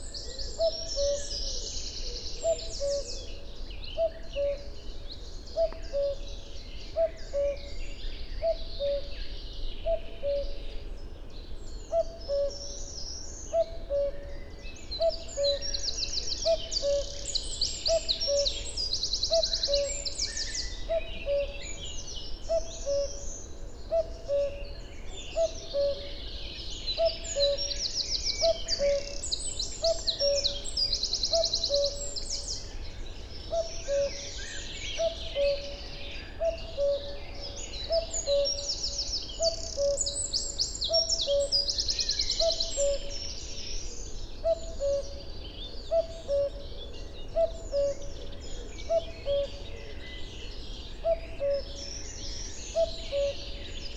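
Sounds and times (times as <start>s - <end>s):
cuckoo calling in nature: 0.6s - 1.6s, 2.4s - 3.4s, 4.0s - 4.8s, 5.6s - 6.4s, 7.0s - 7.8s, 8.4s - 9.1s, 9.8s - 10.6s, 11.9s - 12.6s, 13.5s - 14.2s, 16.4s - 21.8s, 22.5s - 23.3s, 23.9s - 24.6s, 25.3s - 26.2s, 26.9s - 32.6s, 33.5s - 43.3s, 44.4s - 45.2s, 45.9s - 49.8s, 51.0s - 51.9s, 52.7s - 53.7s.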